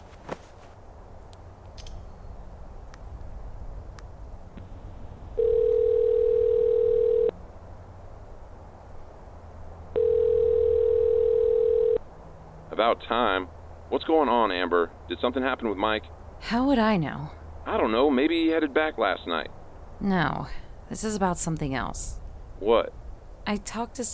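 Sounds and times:
faint hum: 0.0s - 24.1s
telephone ringing tones through an earpiece as a call is placed: 5.4s - 7.4s, 10.0s - 12.0s
speech: 12.8s - 24.1s.

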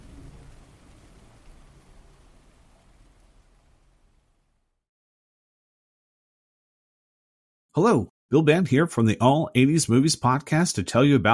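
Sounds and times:
heavy rain: 0.0s - 4.6s
speech: 7.8s - 11.3s.

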